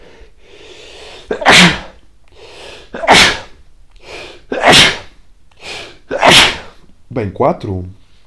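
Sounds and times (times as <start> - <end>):
sharp intake of breath before sneezing: 0.0 - 6.8
loud sneezes: 1.2 - 2.0, 2.8 - 3.6, 4.2 - 6.8
speech: 7.2 - 8.0.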